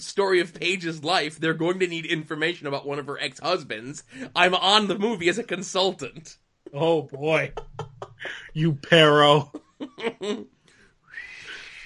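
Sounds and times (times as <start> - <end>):
speech: 0.0 - 10.6
person chuckling: 7.2 - 10.5
faint breathy whistling attempt: 11.0 - 11.8.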